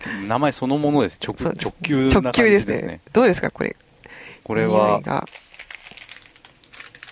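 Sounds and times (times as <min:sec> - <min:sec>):
speech: 0:00.0 - 0:05.5
plastic bag of dried flaked Maldive fish from Sri Lanka crinkling: 0:05.2 - 0:07.1.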